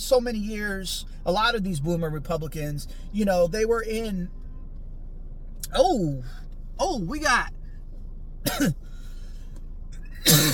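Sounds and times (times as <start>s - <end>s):
speech: 0.1s - 4.4s, 5.6s - 7.6s, 8.4s - 8.9s
man coughing: 8.4s - 8.8s, 10.2s - 10.5s.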